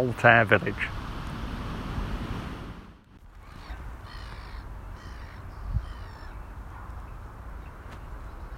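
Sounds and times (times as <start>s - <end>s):
speech: 0.0s - 1.0s
wind rushing: 0.0s - 3.2s
black-headed gulls calling over a cricket ground: 0.0s - 6.4s.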